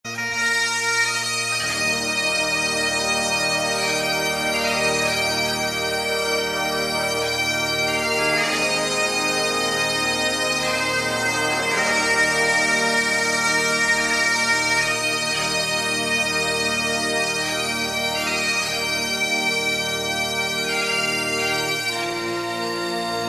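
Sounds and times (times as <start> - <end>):
bagpipe: 0.0 - 23.2.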